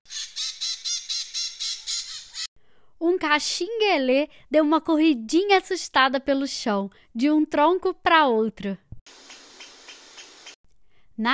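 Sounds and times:
flock of maritaca parakeets squawking in trees: 0:00.1 - 0:02.5
speech: 0:03.0 - 0:08.8, 0:11.2 - 0:11.3.

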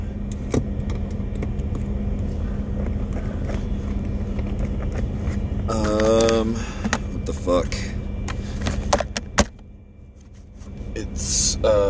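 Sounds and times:
car engine idling while warming up: 0:00.0 - 0:11.8.

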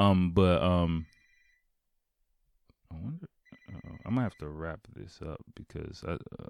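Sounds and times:
speech: 0:00.0 - 0:01.2, 0:02.9 - 0:06.4
phone ringtone: 0:01.0 - 0:01.6, 0:03.4 - 0:04.5.

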